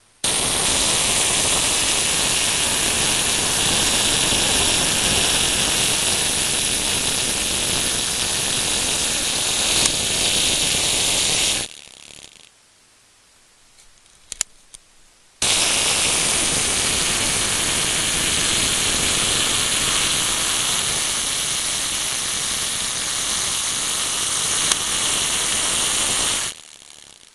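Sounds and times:
camera self-timer mechanism: 0.2s - 12.5s, 15.4s - 27.3s.

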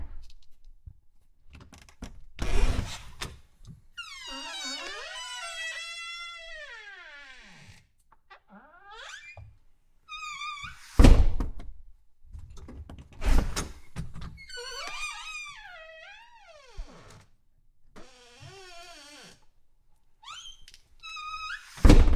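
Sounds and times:
thick squeaky door opening and closing: 2.4s - 3.3s, 4.0s - 9.5s, 10.1s - 11.3s, 13.2s - 17.3s, 17.9s - 19.5s, 20.2s - 22.0s.

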